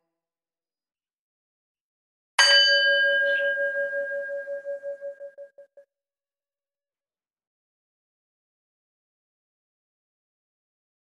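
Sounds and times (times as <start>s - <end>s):
meditation bell struck in a guided relaxation: 2.4s - 5.8s.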